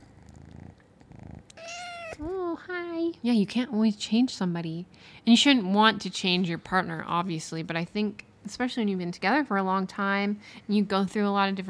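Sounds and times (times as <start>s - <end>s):
cat purring: 0.0s - 2.4s
cat meowing: 1.5s - 2.3s
speech: 2.2s - 11.6s.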